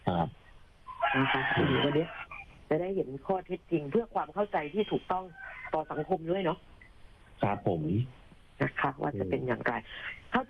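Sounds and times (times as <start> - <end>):
rooster crowing over a phone line: 0.9 - 2.5, 5.1 - 6.2
speech: 1.2 - 6.7, 7.4 - 10.4.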